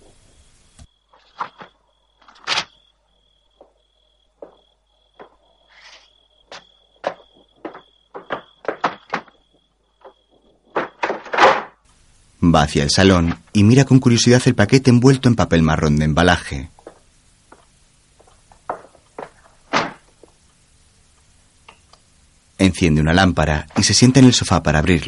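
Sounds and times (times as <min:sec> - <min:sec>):
footsteps returning from a garden to a house door: 0:04.4 - 0:11.8, 0:16.8 - 0:20.4
door sounds: 0:05.2 - 0:11.8, 0:18.7 - 0:20.3
speech: 0:12.5 - 0:16.8, 0:22.7 - 0:25.0.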